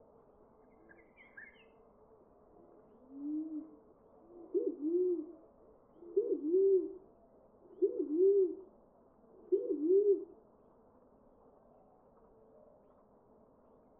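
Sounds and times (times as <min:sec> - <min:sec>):
Columbina inca calling: 0:02.5 - 0:08.7, 0:09.3 - 0:10.4.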